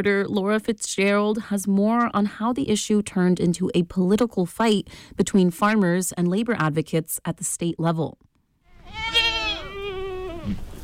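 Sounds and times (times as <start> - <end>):
speech: 0.0 - 8.3, 10.4 - 10.7
faint outdoor noise: 0.0 - 10.8
goat bleating while grazing in a field of brush: 8.7 - 10.8.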